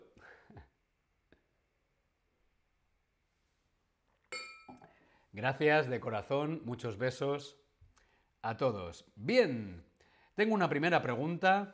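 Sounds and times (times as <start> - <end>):
glasses clinking together in a toast: 4.3 - 4.9
speech: 5.3 - 7.6, 8.4 - 11.7.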